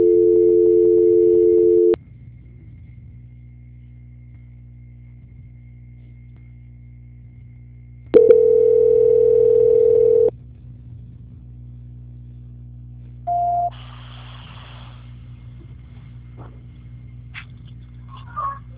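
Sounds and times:
telephone tone during call transfer: 0.0 - 2.0, 8.2 - 10.3, 13.3 - 13.7
low hum: 0.0 - 18.7.

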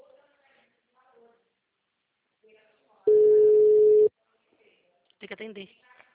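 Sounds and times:
mobile phone ringing with a steady electronic tone: 3.1 - 4.1.

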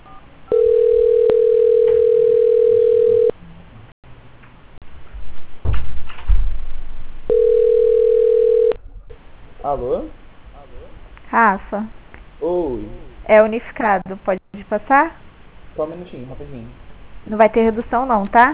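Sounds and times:
telephone tones while a call is being transferred: 0.0 - 3.3, 7.3 - 8.8
low thumps: 5.1 - 7.3
speech: 11.4 - 15.2, 15.8 - 18.5.

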